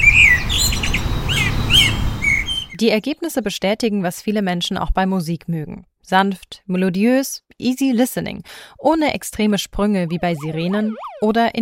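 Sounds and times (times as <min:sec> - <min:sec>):
Eurasian blackbird singing: 0:00.0 - 0:02.8
speech: 0:02.8 - 0:11.6.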